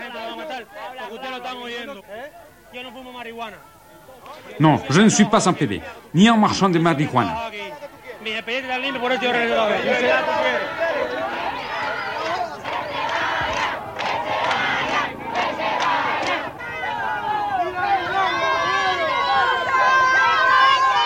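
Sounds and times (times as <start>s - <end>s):
chaotic crowd shouting and yelling: 0.0s - 21.0s
speech: 0.6s - 11.3s.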